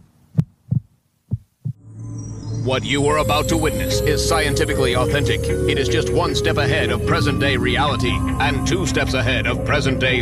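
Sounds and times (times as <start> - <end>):
heartbeat sound effect of low dull thumps: 0.3 - 1.9
speech: 2.6 - 10.1.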